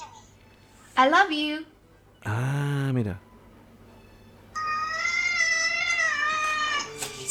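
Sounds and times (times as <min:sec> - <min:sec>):
speech: 0:01.0 - 0:03.3
kitten meowing: 0:04.6 - 0:06.9.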